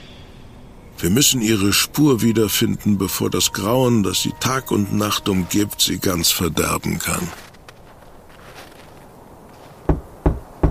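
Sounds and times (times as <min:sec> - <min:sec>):
speech: 0:01.0 - 0:07.5
firm knocks on a door: 0:09.9 - 0:10.6.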